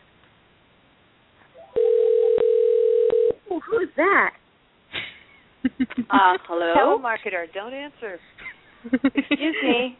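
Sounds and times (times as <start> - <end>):
telephone dial tone: 1.7 - 3.4
speech: 4.0 - 4.4, 5.7 - 9.9
laughter: 5.0 - 6.4, 8.8 - 9.9.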